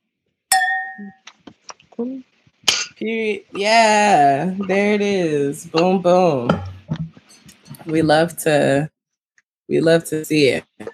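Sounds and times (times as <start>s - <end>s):
wine glasses clinking in a toast: 0.5s - 1.2s
speech: 1.0s - 1.4s, 2.0s - 2.3s, 3.0s - 6.7s, 7.9s - 8.9s, 9.7s - 10.9s.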